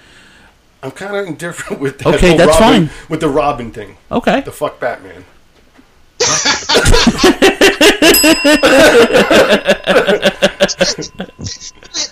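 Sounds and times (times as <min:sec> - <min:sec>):
speech: 0:00.8 - 0:05.4, 0:08.2 - 0:12.1
people laughing and chuckling: 0:06.2 - 0:12.1
bell ringing: 0:07.9 - 0:12.1.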